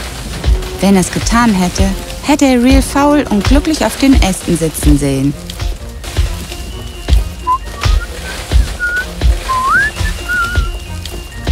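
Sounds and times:
rain-like rough noise: 0.0s - 11.5s
speech: 0.8s - 5.5s
person whistling a tune: 6.4s - 11.5s.

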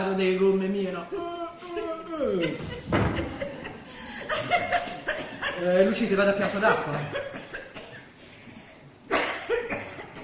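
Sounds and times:
speech: 0.2s - 3.1s, 5.6s - 7.3s
laughter: 1.6s - 7.6s
woman who has been ill coughing: 5.0s - 8.1s, 9.1s - 10.2s.

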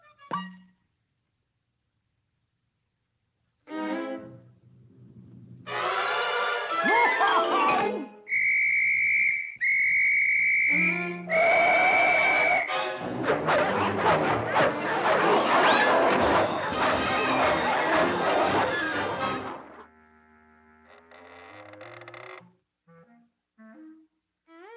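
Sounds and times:
tonal cartoon sounds: 5.7s - 19.8s
police whistle blasts in a dubbed animated cartoon: 8.3s - 13.0s.

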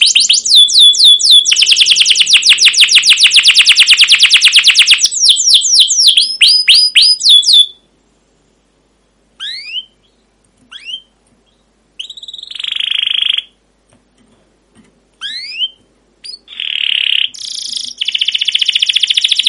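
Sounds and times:
caged canary song used as a lure to tutor young canaries: 0.0s - 7.9s, 9.4s - 13.6s, 15.2s - 19.4s.

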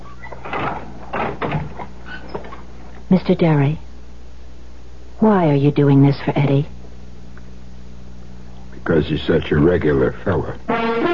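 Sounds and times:
wooden door opening and closing: 0.0s - 2.7s, 10.7s - 11.1s
speech: 3.1s - 3.8s, 5.2s - 6.8s, 8.9s - 11.1s.

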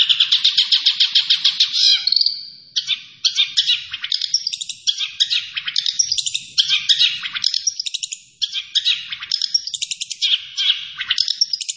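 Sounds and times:
long-tailed shrike singing: 0.0s - 11.7s.

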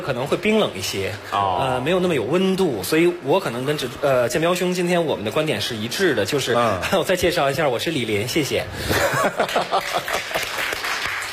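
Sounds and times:
speech: 0.0s - 10.3s
laughter: 8.8s - 10.8s
sparse applause from a small live audience: 9.8s - 11.3s.

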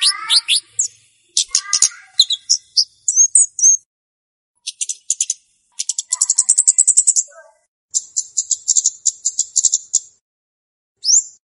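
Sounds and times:
flowerpecker lure song of high fast ticking trills: 0.0s - 3.8s, 4.6s - 10.2s.

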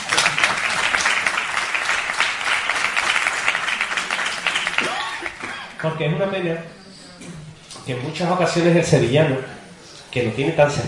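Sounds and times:
audience applause: 0.0s - 5.6s
speech: 5.8s - 6.8s, 7.9s - 10.8s.

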